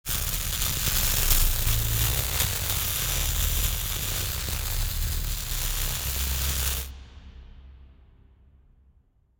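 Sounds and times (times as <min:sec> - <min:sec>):
wet electrical sparks: 0:00.0 - 0:06.9.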